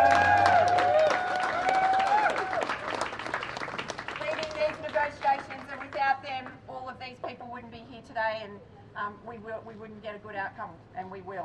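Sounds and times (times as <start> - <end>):
audience cheering: 0.0 - 5.1
large audience applauding for delegates: 0.0 - 6.1
speech: 8.6 - 11.4.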